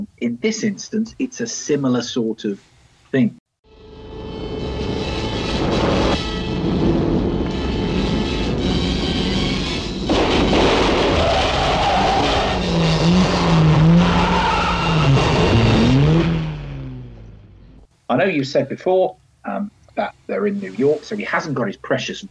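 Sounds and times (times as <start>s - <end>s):
speech: 0.1s - 3.4s, 18.2s - 22.2s
rental car engine roaring: 3.8s - 17.9s
rental car tyres blown out by a stinger-like device thrown across the road: 5.4s - 17.8s
warbling squeals of tyres skidding across the road: 9.7s - 17.8s.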